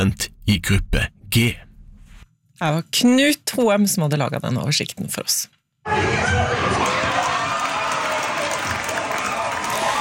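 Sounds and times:
speech: 0.0s - 1.6s, 2.6s - 6.7s
crowd of football fans cheering and shouting in a bar: 5.9s - 9.9s
football fans whooping in a bar: 5.9s - 9.9s
football fans clapping in a bar: 6.6s - 9.9s.

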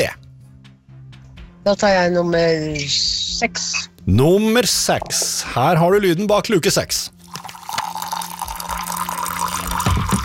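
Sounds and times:
speech: 1.6s - 7.2s
tea pouring into a cup: 7.1s - 10.2s.

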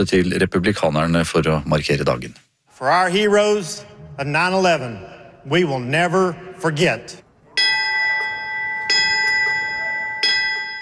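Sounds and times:
speech: 0.0s - 7.2s
memorial bell ringing for firefighters: 7.5s - 10.8s.

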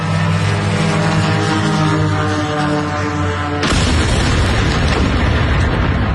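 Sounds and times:
steady buzzing drone engine humming: 0.0s - 6.1s
drone strike explosion near an oil refinery in Moscow Russia: 3.6s - 6.1s.

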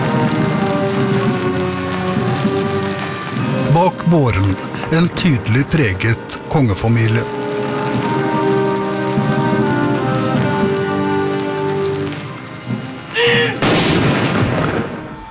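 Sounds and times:
hissing rain-like background: 0.0s - 15.2s
speech: 3.8s - 7.4s
mourning cannon salute shot booming: 13.6s - 15.1s.

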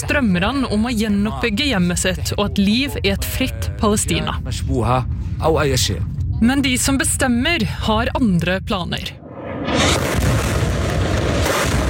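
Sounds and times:
speech: 0.0s - 9.2s
bombs exploding over Gaza City in wartime: 9.2s - 11.8s.

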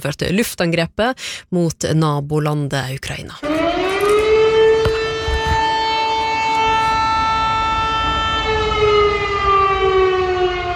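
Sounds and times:
speech: 0.0s - 3.7s
civil defense air raid siren wailing: 3.4s - 10.7s.

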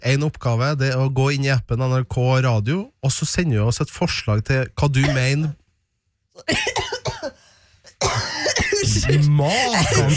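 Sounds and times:
speech: 0.1s - 5.6s, 6.4s - 7.4s, 8.0s - 10.1s
person clearing throat with something stuck in it: 5.0s - 5.5s, 6.4s - 7.4s, 8.0s - 10.1s
person coughing with something stuck in the throat: 5.0s - 5.5s, 6.4s - 10.1s.

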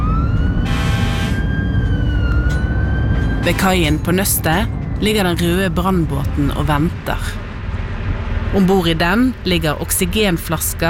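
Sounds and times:
fire engine siren wailing as the truck drives toward the sea: 0.0s - 7.0s
fire truck engine rumble: 0.0s - 10.8s
speech: 3.4s - 7.4s, 8.5s - 10.8s.

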